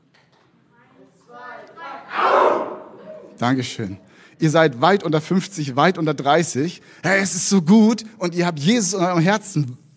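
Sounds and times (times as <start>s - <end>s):
crowd shouting a battle cry: 1.8s - 3.4s
speech: 3.4s - 9.8s.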